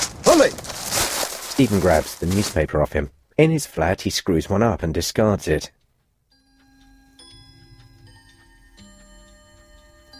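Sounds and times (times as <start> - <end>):
speech: 0.4 - 0.7, 1.6 - 5.8
wall clocks ticking: 5.1 - 10.1
clock chiming: 6.3 - 10.1.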